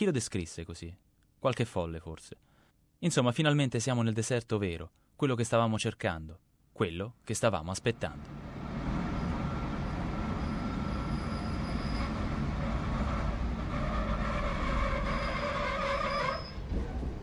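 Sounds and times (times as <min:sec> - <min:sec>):
speech: 0:00.0 - 0:08.6
train rumbling along the rails through the Australian desert: 0:08.1 - 0:17.2
thin metallic train brake squeal: 0:09.1 - 0:16.7.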